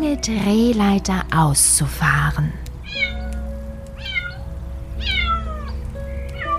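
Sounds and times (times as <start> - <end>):
speech: 0.2 - 3.1
white kitten meowing in high thin cries: 2.8 - 6.5.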